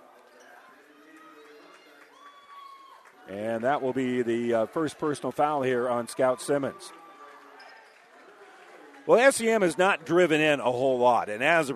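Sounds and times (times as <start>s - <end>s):
basketball crowd cheering mockingly in an indoor arena: 0.0s - 11.7s
man commentating: 3.3s - 6.9s, 9.1s - 11.7s
speech: 3.3s - 7.0s, 9.1s - 11.7s.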